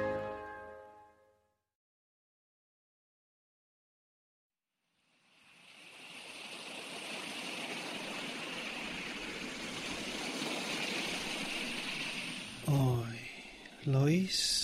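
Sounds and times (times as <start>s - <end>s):
sea waves washing at the beach: 5.2s - 14.6s.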